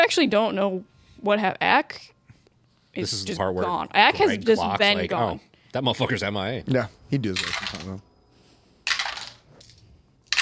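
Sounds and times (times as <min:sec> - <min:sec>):
speech: 0:00.1 - 0:02.2, 0:02.9 - 0:08.1
many dice clattering as they are rolled: 0:07.4 - 0:07.9, 0:08.8 - 0:10.4.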